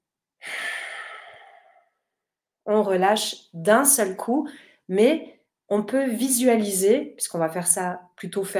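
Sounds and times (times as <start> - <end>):
long breathy exhale during guided breathing exercise: 0.4 - 2.0
speech: 2.7 - 8.5.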